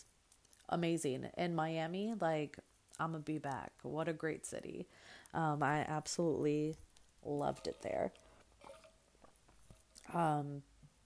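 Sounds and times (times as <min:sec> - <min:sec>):
speech: 0:00.7 - 0:08.2, 0:10.1 - 0:10.7
voiced satisfied exhale after swallowing: 0:04.9 - 0:05.3
person sipping water with mouth clicks and wet slurping: 0:07.6 - 0:10.1.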